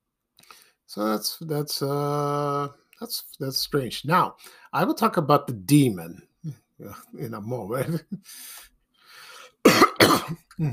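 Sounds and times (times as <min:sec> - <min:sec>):
speech: 0:00.9 - 0:08.7, 0:09.7 - 0:10.7
person coughing: 0:09.6 - 0:10.7.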